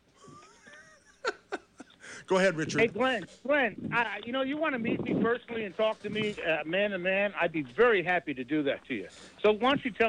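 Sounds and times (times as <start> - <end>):
wheezy breathing into a phone microphone: 1.9 - 2.4, 9.1 - 9.4
speech: 2.3 - 10.0.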